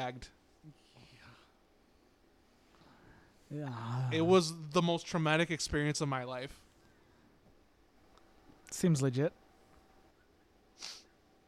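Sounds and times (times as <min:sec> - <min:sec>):
speech: 0:00.0 - 0:00.8, 0:03.5 - 0:06.6, 0:08.7 - 0:09.4
sniff through the nose: 0:10.8 - 0:11.1.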